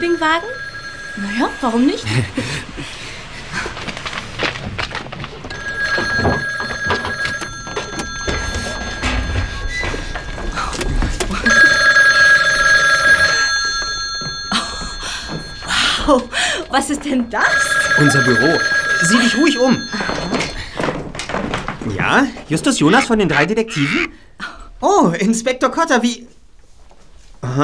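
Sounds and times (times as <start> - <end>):
speech: 0.0 - 3.1, 16.1 - 20.1, 21.9 - 24.2, 24.8 - 26.3
telephone ringing: 0.0 - 21.2, 22.7 - 23.6
thumps and shuffling movement: 2.9 - 22.6.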